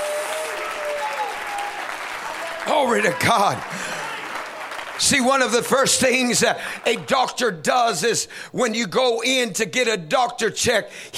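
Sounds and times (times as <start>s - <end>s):
church congregation clapping hands during worship: 0.0s - 7.6s
speech: 2.6s - 4.0s, 5.0s - 11.1s.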